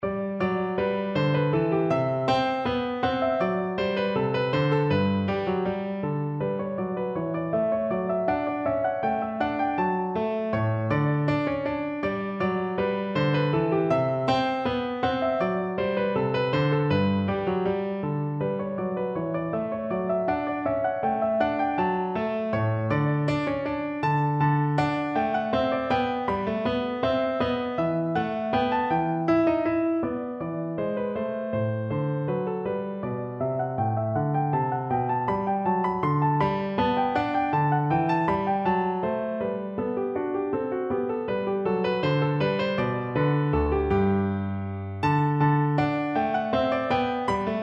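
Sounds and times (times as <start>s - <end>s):
piano bourree: 0.0s - 47.6s.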